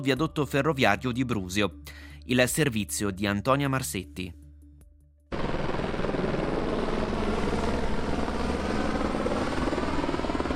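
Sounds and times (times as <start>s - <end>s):
speech: 0.0s - 4.4s
firefighting helicopters flying overhead: 5.3s - 10.5s.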